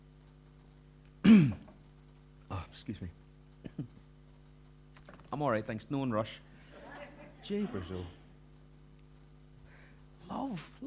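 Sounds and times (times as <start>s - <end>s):
throat clearing: 1.2s - 1.8s, 3.6s - 4.0s
speech: 2.9s - 3.2s, 3.8s - 4.0s, 5.3s - 6.5s, 7.4s - 8.2s, 10.3s - 10.8s.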